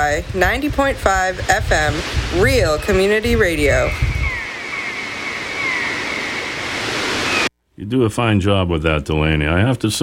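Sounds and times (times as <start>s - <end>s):
speech: 0.1s - 4.1s, 7.8s - 10.0s
ocean surf rushing on the seacoast of Wells Maine: 0.7s - 7.5s
faint thin seagull cries: 3.8s - 7.5s.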